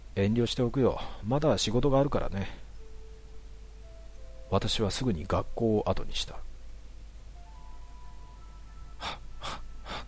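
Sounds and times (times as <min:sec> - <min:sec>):
quiet hum: 0:00.0 - 0:10.0
speech: 0:00.2 - 0:02.6, 0:04.5 - 0:06.5
rough heavy panting breaths: 0:09.0 - 0:10.0.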